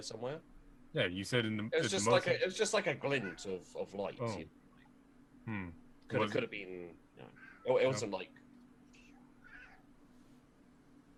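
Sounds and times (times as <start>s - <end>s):
speech: 0.0s - 4.6s, 5.4s - 8.4s
steady low hum: 0.0s - 11.1s
cat meowing in the distance: 3.2s - 3.5s, 9.4s - 9.8s.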